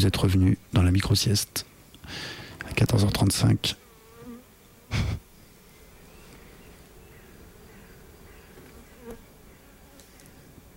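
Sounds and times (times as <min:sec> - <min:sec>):
speech: 0:00.0 - 0:03.8, 0:04.9 - 0:05.2
many bees buzzing inside a hive: 0:02.1 - 0:10.7.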